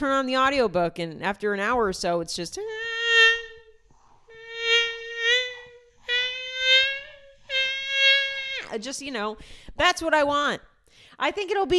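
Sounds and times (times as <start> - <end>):
speech: 0.0 - 2.9, 8.7 - 11.7
voice imitating a mosquito buzzing: 2.6 - 9.0.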